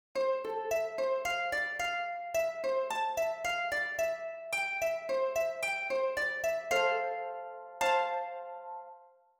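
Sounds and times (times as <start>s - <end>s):
harp playing a psalm: 0.2s - 9.2s.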